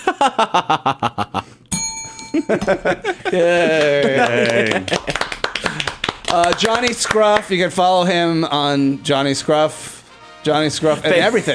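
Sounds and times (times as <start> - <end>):
rhythmic giggling: 0.0 - 6.8
speech: 0.2 - 1.4, 2.4 - 5.0, 6.3 - 11.5
bright ringing bell strike: 1.7 - 3.0.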